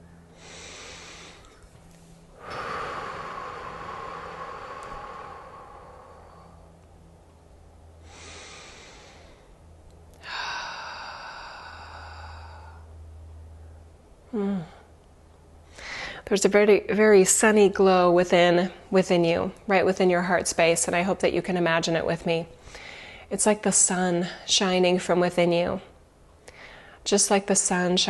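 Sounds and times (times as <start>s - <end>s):
deep breathing in through the nose and out through the mouth during guided relaxation: 0.3s - 7.1s, 8.0s - 13.0s, 15.6s - 16.2s, 22.6s - 23.3s, 26.5s - 27.0s
speech: 16.3s - 25.9s, 27.1s - 28.0s.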